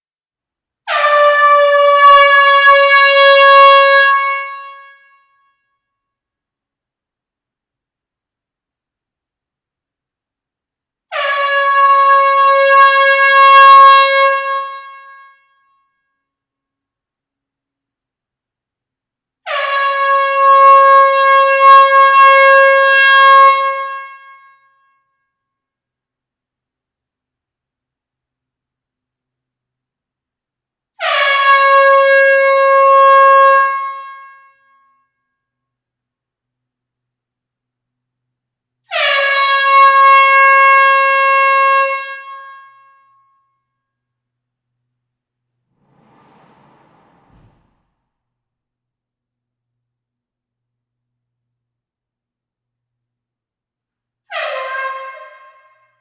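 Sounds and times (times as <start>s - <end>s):
air horn blasts in a close hall: 0.9s - 5.7s, 11.1s - 15.6s, 19.4s - 24.8s, 31.0s - 35.2s, 38.9s - 43.2s, 54.3s - 55.9s.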